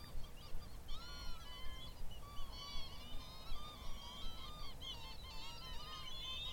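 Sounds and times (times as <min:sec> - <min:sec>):
roosting Northern Lapwing flock wheezing and chortling at dusk on a shallow coastal lagoon: 0:00.0 - 0:06.5.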